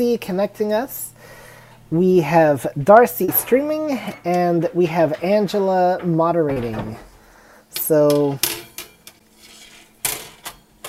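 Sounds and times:
speech: 0:00.0 - 0:07.1, 0:07.8 - 0:08.5
pan set down on a metal cooling rack: 0:03.0 - 0:07.2.

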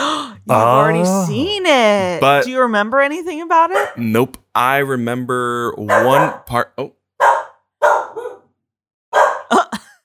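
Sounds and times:
speech: 0:00.5 - 0:07.0
young wolf cub barking: 0:03.7 - 0:04.2, 0:05.8 - 0:06.6, 0:07.2 - 0:08.5, 0:09.2 - 0:09.5.

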